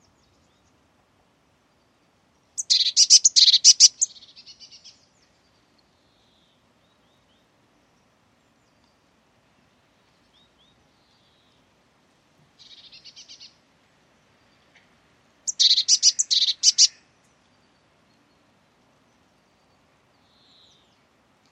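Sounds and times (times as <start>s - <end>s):
Eurasian blue tit harsh churring calls: 2.6s - 4.1s, 15.5s - 17.0s.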